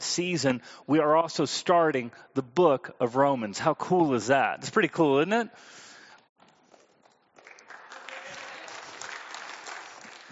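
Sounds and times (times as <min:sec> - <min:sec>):
speech: 0:00.2 - 0:05.8
audience clapping: 0:07.0 - 0:10.3.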